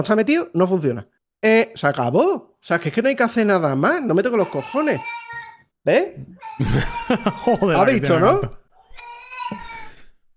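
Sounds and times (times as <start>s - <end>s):
speech: 0.0s - 5.2s, 5.8s - 8.6s
cat meowing: 4.2s - 10.1s
laughter: 6.3s - 8.6s.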